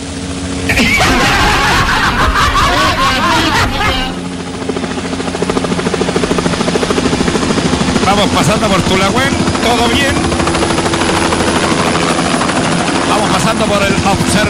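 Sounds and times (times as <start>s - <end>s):
helicopter flying overhead with rapid rotor chop: 0.0s - 14.4s
excited voices: 0.7s - 4.2s
laughter: 0.7s - 4.2s
speech: 8.2s - 10.4s, 13.5s - 14.4s.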